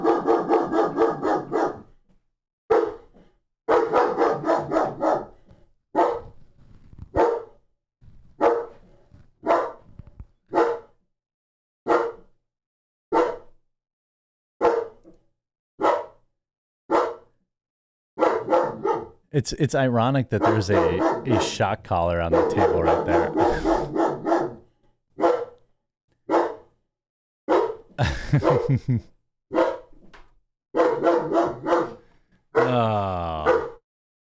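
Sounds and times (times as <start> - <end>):
puppy barking: 0.0 - 1.9, 2.7 - 3.1, 3.7 - 5.4, 6.0 - 6.4, 7.2 - 7.6, 8.4 - 8.8, 9.4 - 9.8, 10.5 - 10.9, 11.9 - 12.3, 13.2 - 13.5, 14.6 - 15.0, 15.8 - 16.2, 16.9 - 17.3, 18.2 - 19.2, 20.4 - 21.6, 22.2 - 24.6, 25.2 - 25.6, 26.3 - 26.7, 27.5 - 27.9, 29.5 - 29.9, 30.8 - 32.0, 33.4 - 33.8
speech: 19.3 - 23.6, 28.0 - 29.2
laughter: 19.4 - 24.0, 28.0 - 29.1, 32.6 - 33.6.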